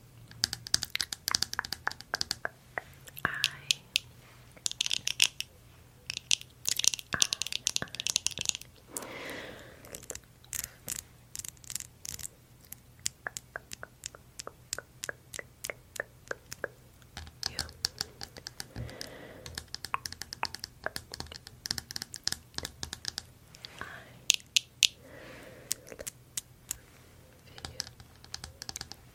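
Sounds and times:
low steady hum: 0.0s - 29.1s
rapid tapping on a camera and glasses: 0.3s - 5.5s, 6.1s - 8.7s, 13.0s - 23.3s, 27.5s - 29.1s.

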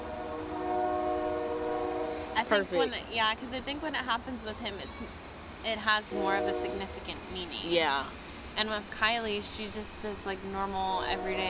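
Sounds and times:
passing train horn sounding a sustained multi-tone blare: 0.0s - 3.0s, 6.1s - 7.0s, 11.0s - 11.4s
low rumbling rail noise of a passing train: 0.0s - 11.4s
speech: 2.4s - 11.4s.

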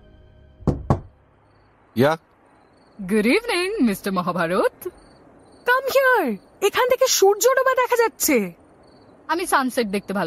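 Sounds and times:
knocking on a door: 0.6s - 1.2s
speech: 2.0s - 2.3s, 3.0s - 5.0s, 5.8s - 8.6s, 9.3s - 10.2s.

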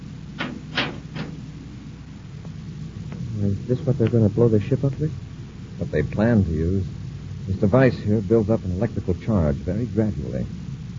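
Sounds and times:
steady low hum: 0.0s - 10.9s
wooden door being pushed shut: 0.4s - 1.5s
speech: 3.5s - 5.2s, 5.8s - 10.7s.

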